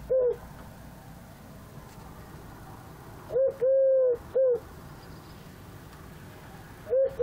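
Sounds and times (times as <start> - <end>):
Eurasian collared dove cooing: 0.0 - 0.5, 3.3 - 4.7, 6.5 - 7.2.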